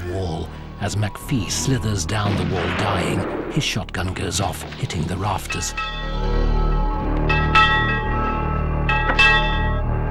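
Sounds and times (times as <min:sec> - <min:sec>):
speech: 0:00.2 - 0:06.6
large bell ringing: 0:05.3 - 0:10.1.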